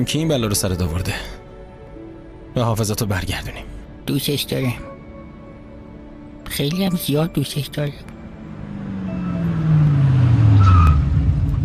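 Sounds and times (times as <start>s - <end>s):
speech: 0.0s - 1.4s, 2.6s - 4.9s, 6.5s - 8.1s
car engine roaring: 8.0s - 11.6s
high tire squeal of a skidding car: 8.9s - 11.5s.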